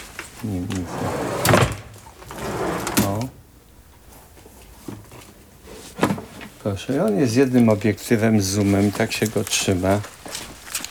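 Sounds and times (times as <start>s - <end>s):
speech: 0.4s - 1.1s, 6.6s - 10.2s
drawer holding a camera rattling open: 0.8s - 3.3s.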